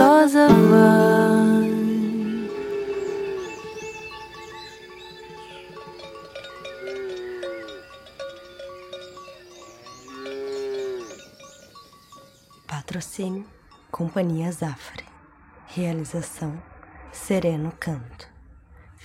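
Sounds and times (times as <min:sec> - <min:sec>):
faint bell-like tones: 0:00.5 - 0:16.4
cow mooing: 0:02.4 - 0:03.8, 0:05.9 - 0:07.9, 0:09.5 - 0:11.3
speech: 0:13.0 - 0:15.1, 0:15.7 - 0:18.3.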